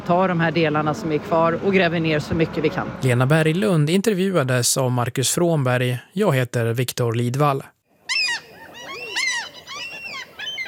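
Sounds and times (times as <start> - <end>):
speech: 0.1 - 7.8
common gulls calling: 8.0 - 10.6.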